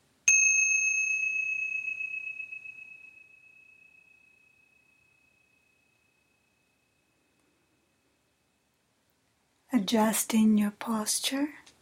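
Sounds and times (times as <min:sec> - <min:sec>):
single clear bell strike ringing: 0:00.3 - 0:06.6
speech: 0:09.8 - 0:11.6.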